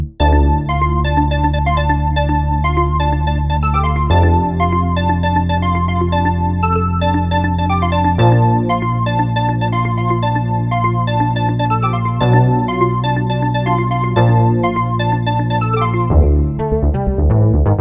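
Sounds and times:
house synthesizer sound from Roland SR-JV80-11 Techno Collection: 0.2 - 17.7.

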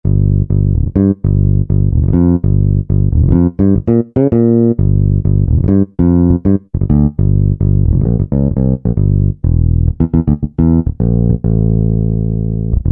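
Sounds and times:
fingered bass preset on a synthesizer module: 0.0 - 12.9.

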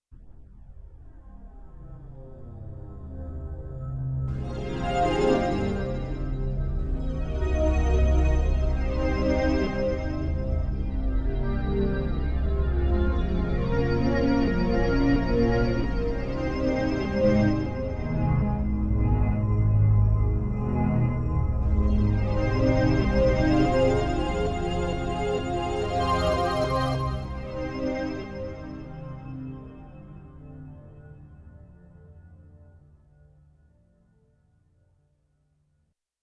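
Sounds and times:
sampler strings texture: 4.3 - 31.7.

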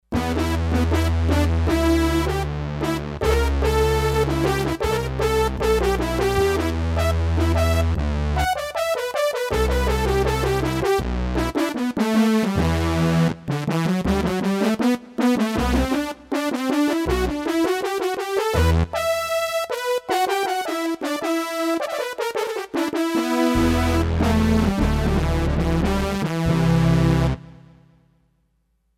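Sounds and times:
fat synthesizer lead on Roland D-10: 0.2 - 27.6.

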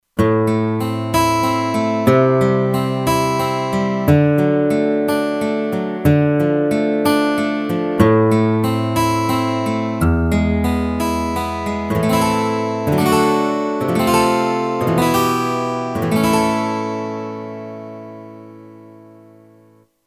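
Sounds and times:
steel string guitar sample from Kurzweil K2500X synthesizer: 0.2 - 19.9.

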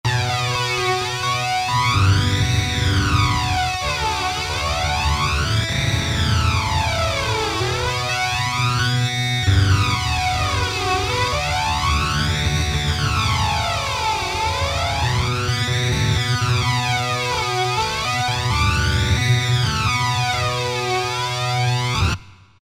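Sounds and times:
flanger guitar preset on a synth module: 0.1 - 22.2.

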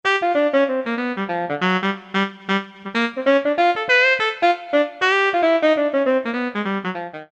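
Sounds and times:
alto saxophone preset on a Yamaha TG77 synthesizer: 0.0 - 7.3.

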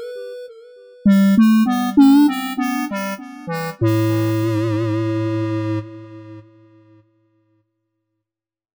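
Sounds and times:
flute-like synth lead: 1.1 - 7.0.

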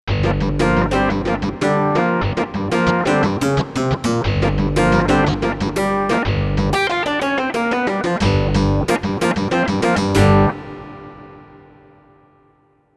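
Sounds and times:
Korg MSC-1S clavi synth sound: 0.1 - 10.6.

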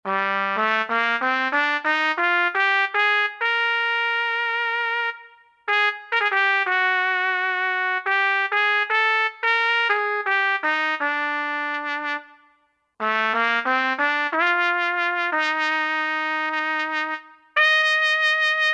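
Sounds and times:
trumpet solo patch on Roland JD-990 synthesizer: 0.1 - 18.7.

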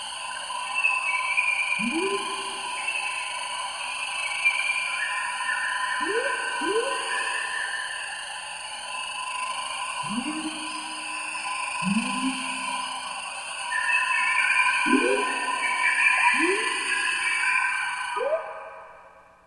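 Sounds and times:
rain forest synthesizer patch: 0.3 - 3.3, 3.9 - 18.9.

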